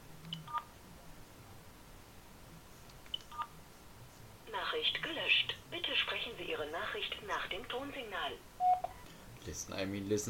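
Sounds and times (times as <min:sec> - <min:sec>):
quiet hiss: 0:00.0 - 0:10.2
speech: 0:06.2 - 0:08.5, 0:09.4 - 0:10.2
telephone keypad tones on a voicemail system as the hash key is pressed: 0:08.6 - 0:09.0.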